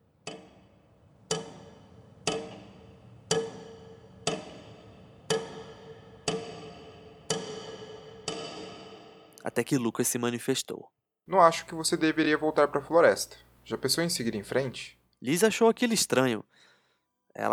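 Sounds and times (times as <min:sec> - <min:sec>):
clock ticking: 0:00.1 - 0:09.5, 0:11.3 - 0:15.6
speech: 0:09.5 - 0:16.7, 0:17.3 - 0:17.5.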